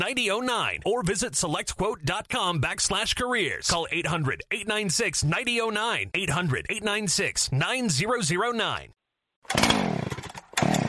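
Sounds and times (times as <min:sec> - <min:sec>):
speech: 0:00.0 - 0:09.9
chainsaw engine sputtering to life and revving: 0:09.4 - 0:10.8.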